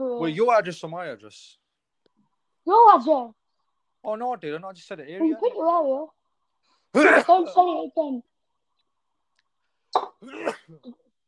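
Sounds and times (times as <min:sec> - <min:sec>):
speech: 0:00.2 - 0:01.6, 0:02.6 - 0:03.4, 0:04.0 - 0:06.2, 0:06.9 - 0:08.3, 0:10.0 - 0:11.0
person sneezing: 0:09.9 - 0:10.9.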